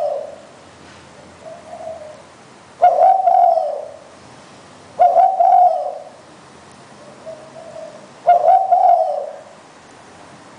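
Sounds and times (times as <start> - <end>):
spotted dove cooing: 0.0 - 0.5, 1.3 - 4.1, 5.0 - 6.2, 7.0 - 9.6.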